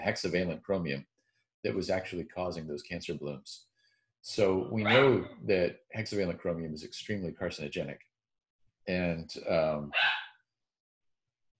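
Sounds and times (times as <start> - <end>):
speech: 0.0 - 8.1, 8.8 - 10.2
dogs barking in the morning: 4.8 - 5.3, 9.9 - 10.2.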